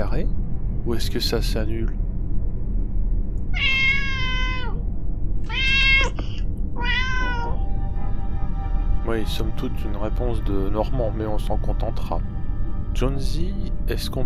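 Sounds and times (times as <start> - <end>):
low steady hum: 0.0 - 14.2
speech: 0.9 - 2.0, 9.1 - 12.3, 13.0 - 14.2
cat meowing in drawn-out wavering cries: 3.5 - 4.8, 5.5 - 7.6.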